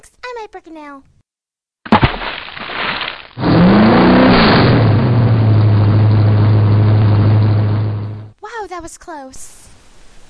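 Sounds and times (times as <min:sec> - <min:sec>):
speech: 0:00.0 - 0:01.2, 0:08.7 - 0:09.6
small chainsaw engine starting and revving: 0:03.4 - 0:08.3.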